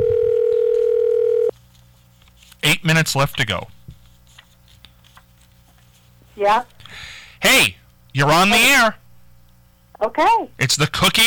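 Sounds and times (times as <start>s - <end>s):
telephone dial tone: 0.0s - 1.5s
faint low hum: 0.0s - 11.2s
speech: 2.8s - 3.8s, 6.4s - 9.0s, 10.0s - 11.2s.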